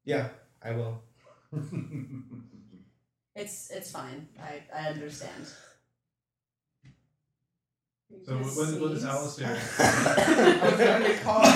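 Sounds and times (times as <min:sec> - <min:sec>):
speech: 0:00.0 - 0:02.7, 0:03.4 - 0:05.7, 0:08.1 - 0:11.5
laughter: 0:01.6 - 0:02.4, 0:08.3 - 0:11.5
person coughing: 0:09.6 - 0:11.5.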